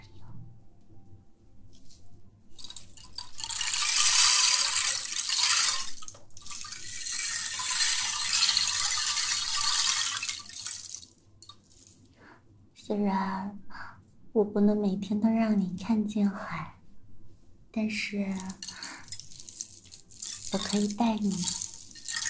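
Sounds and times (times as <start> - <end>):
ocean drum rolling beads hissing like waves: 2.5 - 12.3, 18.3 - 22.2
speech: 12.9 - 13.6, 14.4 - 16.7, 17.8 - 18.8, 20.5 - 21.6.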